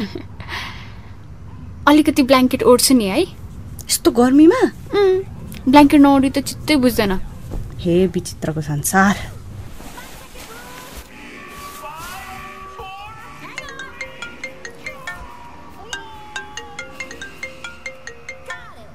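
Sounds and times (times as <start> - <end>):
speech: 0.0 - 0.3, 1.9 - 9.3
phone ringtone with a melodic electronic tune of bright repeating beeps: 13.3 - 18.9.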